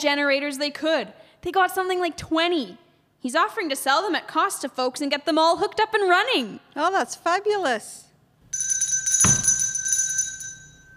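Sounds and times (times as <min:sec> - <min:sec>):
speech: 0:00.0 - 0:08.7
doorbell ringing with a bright buzzing electric tone: 0:08.5 - 0:10.9.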